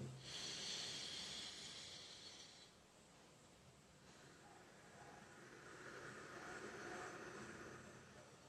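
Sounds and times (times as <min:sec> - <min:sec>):
sharp airy inhale: 0:00.1 - 0:02.8, 0:05.2 - 0:08.4
long softer steady exhale: 0:00.2 - 0:02.8, 0:04.0 - 0:08.4.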